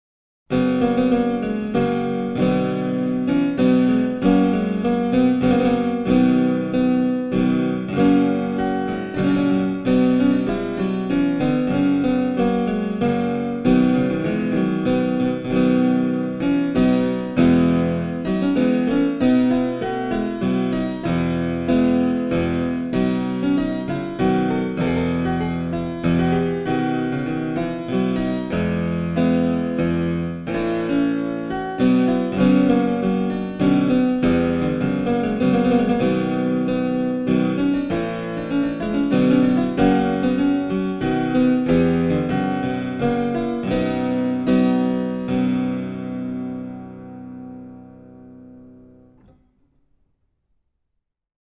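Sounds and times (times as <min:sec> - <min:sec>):
Italian harpsichord: 0:00.5 - 0:48.8.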